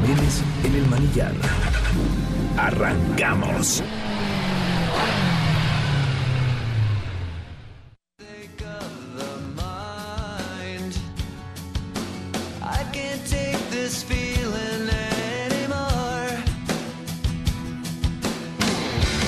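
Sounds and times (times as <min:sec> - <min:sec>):
upbeat music: 0:00.0 - 0:04.0, 0:08.2 - 0:19.2
motorcycle engine revving: 0:00.0 - 0:08.0
speech: 0:00.3 - 0:04.4.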